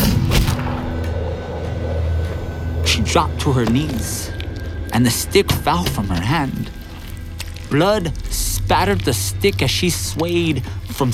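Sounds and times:
pistol fired by a soldier on a rearing horse: 0.0s - 1.0s
steady low rumbling background: 0.0s - 11.1s
speech: 3.0s - 4.4s, 5.0s - 6.8s, 7.7s - 11.1s.

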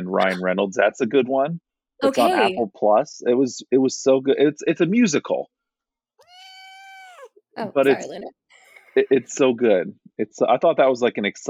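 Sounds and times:
speech: 0.1s - 5.6s, 7.6s - 8.4s, 9.0s - 11.4s
cat meowing: 6.2s - 8.1s.

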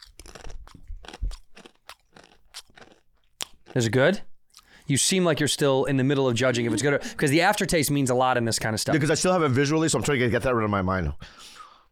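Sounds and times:
someone crunching and chewing a piece of food: 0.0s - 5.7s
speech: 3.7s - 4.3s, 4.9s - 11.5s.

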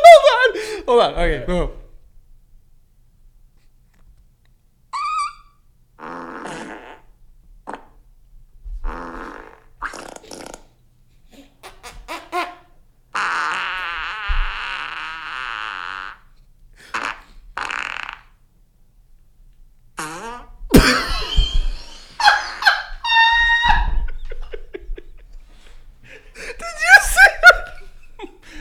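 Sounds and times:
speech: 0.9s - 1.8s
fart squeaking upward in pitch: 4.9s - 8.0s, 8.8s - 10.8s, 11.6s - 18.4s, 20.0s - 24.2s
farts: 6.0s - 8.0s, 8.7s - 10.8s, 13.1s - 18.4s, 20.0s - 21.8s
laughter: 20.8s - 25.6s, 26.3s - 28.5s.

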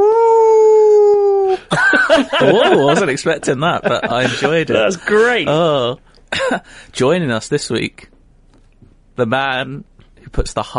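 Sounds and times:
person imitating a wolf howl: 0.0s - 1.7s
laughter: 1.6s - 6.6s
speech: 2.2s - 8.1s, 9.2s - 10.7s.

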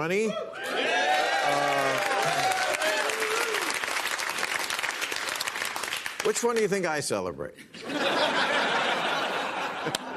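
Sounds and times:
speech: 0.0s - 0.9s, 1.5s - 2.5s, 6.2s - 8.0s, 9.8s - 10.1s
excited whoops and shouts: 0.3s - 3.8s
studio audience applauding and cheering: 0.6s - 6.7s
laughter: 7.7s - 10.1s.

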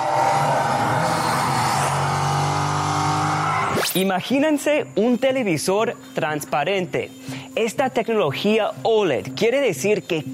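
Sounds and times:
racing car engines roaring past on a TV demo: 0.0s - 3.8s
racing car tires squealing: 0.0s - 4.0s
high whine shifting pitch: 0.0s - 5.2s
speech: 4.0s - 10.3s.

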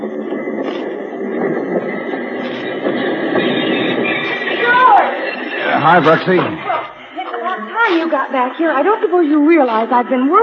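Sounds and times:
work train arriving in La Paz rumbling: 0.0s - 10.4s
speech: 5.9s - 6.6s, 8.1s - 10.4s.

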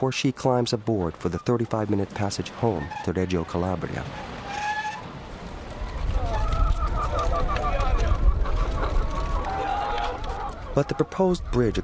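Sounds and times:
speech: 0.0s - 4.6s, 10.8s - 11.8s
rumbling engine or traffic noise: 0.6s - 11.8s
chickens clucking and squawking: 6.2s - 11.8s.

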